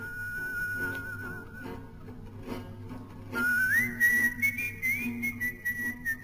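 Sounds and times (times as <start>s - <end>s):
person whistling a slow mournful resistance song melody: 0.0s - 1.8s, 3.4s - 6.2s.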